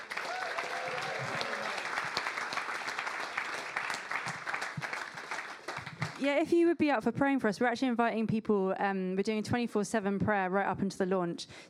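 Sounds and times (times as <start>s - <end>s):
audience applause: 0.0s - 6.2s
speech: 6.2s - 11.6s.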